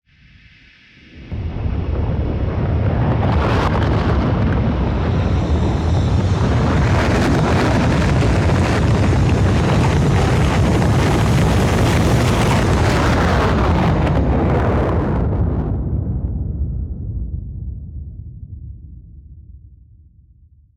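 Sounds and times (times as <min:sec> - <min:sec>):
silo rocket launching: 0:01.2 - 0:16.6.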